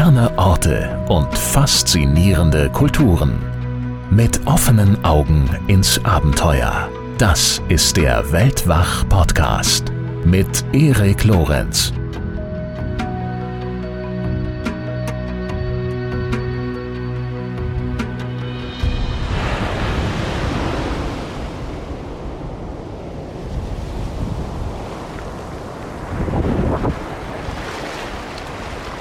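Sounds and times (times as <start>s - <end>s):
melodic music passage: 0.0s - 18.5s
speech: 0.1s - 12.0s
Pacific Ocean waves washing onto a beach: 18.8s - 28.9s.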